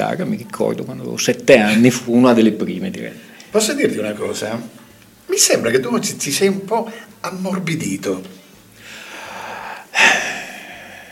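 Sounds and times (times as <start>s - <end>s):
speech: 0.0s - 8.4s
sharp breath drawn in through the mouth: 8.8s - 11.1s.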